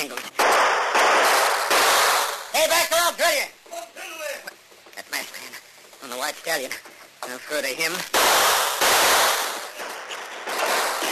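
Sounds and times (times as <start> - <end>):
gunshots fired through an open window: 0.4 - 3.0, 8.1 - 11.1
speech: 7.5 - 8.4.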